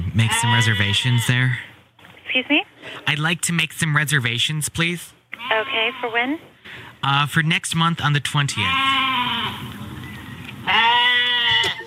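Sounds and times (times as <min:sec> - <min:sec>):
goat bleating: 0:00.1 - 0:01.7, 0:05.4 - 0:06.4, 0:08.5 - 0:09.8, 0:10.6 - 0:11.8
speech: 0:00.2 - 0:01.7, 0:02.3 - 0:09.2.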